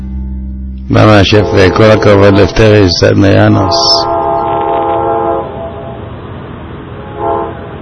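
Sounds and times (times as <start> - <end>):
speech: 0.9 - 4.1
passenger train rumbling at a station: 0.9 - 7.7
passenger train horn blasts at a station: 1.0 - 6.0, 7.0 - 7.7.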